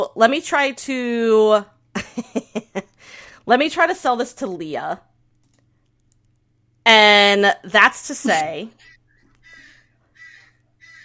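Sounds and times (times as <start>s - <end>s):
speech: 0.1s - 5.1s, 6.9s - 8.9s
bird giving harsh raspy crow-like caws: 8.8s - 11.0s.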